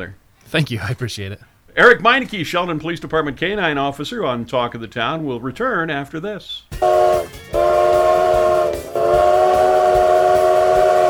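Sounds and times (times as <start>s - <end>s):
speech: 0.0s - 7.3s
train steam whistle blasts: 6.8s - 11.0s.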